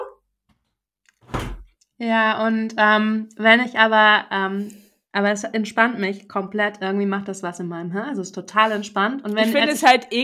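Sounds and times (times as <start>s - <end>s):
door pushed shut with a solid thud: 1.2s - 1.7s
speech: 2.0s - 10.2s.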